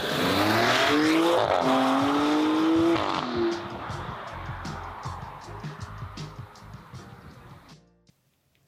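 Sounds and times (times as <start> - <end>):
Maserati Grecale Trofeo SUV engine roaring: 0.0 - 6.6
faint tire noise of driving SUV: 0.0 - 7.7.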